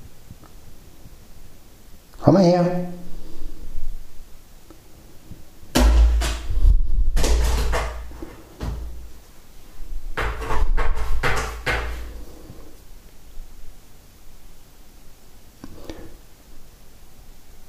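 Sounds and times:
speech: 2.3s - 2.9s
clattering bangs and thumps of a pet at a door: 5.7s - 9.2s, 10.1s - 12.2s
pet rattling and playing with a door: 7.2s - 9.1s, 10.2s - 12.2s.

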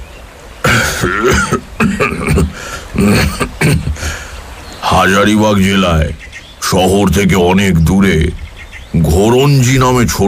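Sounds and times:
elderly man clearing his throat while sitting on grass outdoors: 0.6s - 4.2s
elderly man coughing while sitting on grass outdoors: 0.6s - 4.3s
speech: 1.0s - 2.0s, 5.0s - 10.2s.

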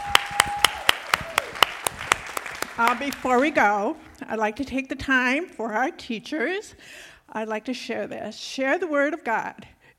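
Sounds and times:
audience clapping in unison: 0.0s - 3.8s
speech: 2.8s - 9.9s.

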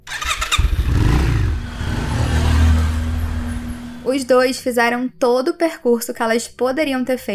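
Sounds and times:
motorcycle engine revving and idling: 0.0s - 4.6s
speech: 4.1s - 7.3s.

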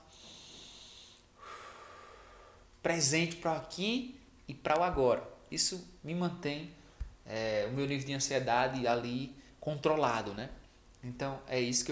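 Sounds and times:
person breathing deeply as a breathing technique: 0.0s - 2.7s
speech: 2.8s - 11.9s.

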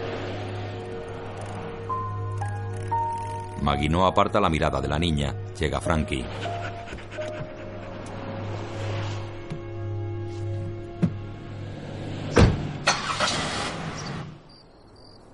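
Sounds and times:
car engine droning on a tree-lined road: 0.0s - 3.6s, 6.2s - 14.5s
speech: 3.6s - 6.8s.

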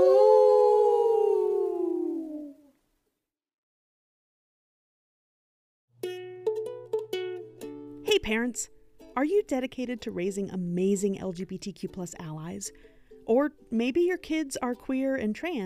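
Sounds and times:
person imitating a dog's howl: 0.0s - 2.7s
music: 5.9s - 15.6s
speech: 8.2s - 15.6s.

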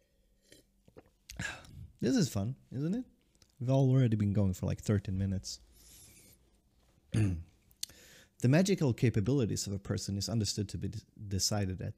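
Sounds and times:
person sipping water: 0.4s - 2.0s
swallowing: 0.8s - 1.9s
speech: 2.0s - 5.7s, 7.1s - 7.5s, 8.4s - 11.9s.

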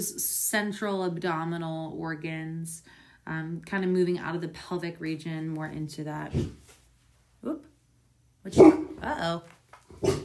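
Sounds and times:
speech: 0.0s - 6.6s, 7.4s - 7.7s, 8.4s - 10.2s
puppy barking in short sharp bursts: 8.5s - 9.0s, 10.0s - 10.2s.

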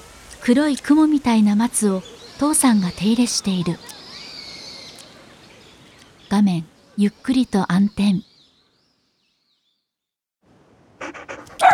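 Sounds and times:
speech: 0.4s - 4.0s, 6.3s - 8.3s
dog panting while dashing out of its kennel in a yard: 11.0s - 11.7s.

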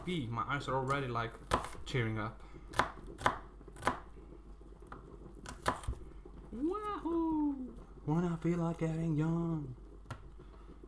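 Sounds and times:
speech: 0.0s - 3.4s, 6.5s - 9.8s
knife chopping onions in a kitchen: 0.8s - 2.0s, 2.7s - 4.1s, 4.9s - 6.0s.

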